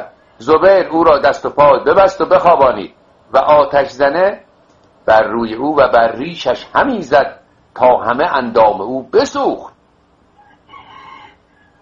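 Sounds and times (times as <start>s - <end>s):
speech: 0.0s - 4.4s, 5.0s - 9.7s
low noise: 0.0s - 11.7s
faint rooster crow: 10.3s - 11.7s.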